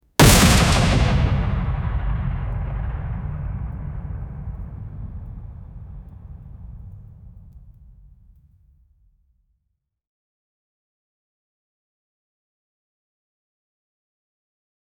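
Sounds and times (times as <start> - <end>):
artillery booms: 0.0 - 8.1
tank 150mm gun firing: 0.2 - 7.0.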